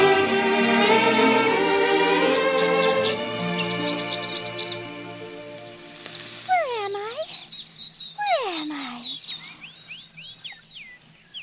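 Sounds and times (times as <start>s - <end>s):
birds chirping in a forest: 0.0s - 11.4s.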